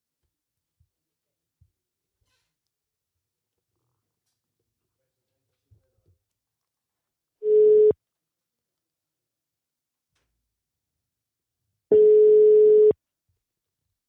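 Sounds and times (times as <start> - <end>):
telephone line tones while phoning a radio guest: 7.4 - 8.0, 11.9 - 13.0.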